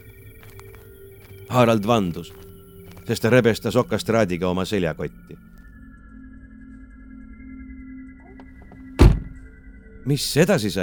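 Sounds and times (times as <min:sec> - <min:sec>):
speech: 0:01.5 - 0:02.4, 0:03.1 - 0:05.5, 0:10.1 - 0:10.8
car door pulled shut gently from inside: 0:08.2 - 0:09.5.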